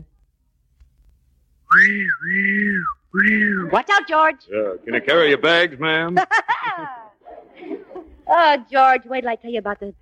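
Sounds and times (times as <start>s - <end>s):
whistle blowing: 1.7s - 3.7s
speech: 1.7s - 7.0s, 8.3s - 10.0s
laughter: 4.6s - 8.3s.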